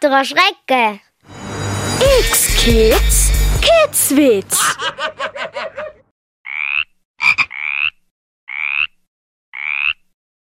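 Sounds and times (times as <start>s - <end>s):
speech: 0.0s - 1.1s, 2.0s - 5.7s
laughter: 4.5s - 6.1s
frog croaking: 6.5s - 9.0s, 9.6s - 10.1s.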